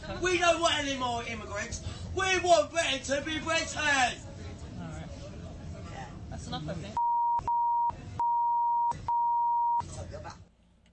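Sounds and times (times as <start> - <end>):
speech: 0.2 - 4.3, 6.4 - 7.0
censor bleep over swearing: 7.0 - 9.8.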